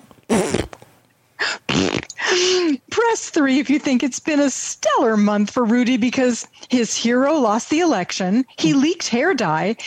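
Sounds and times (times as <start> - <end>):
loud fart sound effects: 0.3 - 0.8, 1.7 - 2.1
speech: 3.3 - 9.8.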